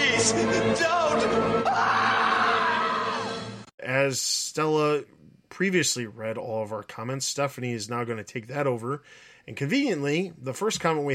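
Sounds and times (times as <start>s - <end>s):
speech: 0.2s - 2.2s, 3.8s - 11.1s
person shrieking: 1.6s - 3.3s.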